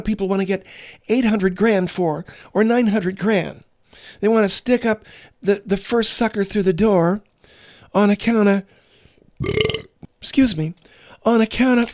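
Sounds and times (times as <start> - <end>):
speech: 0.0 - 8.8, 9.4 - 11.9
loud drawn-out belching: 9.4 - 10.1.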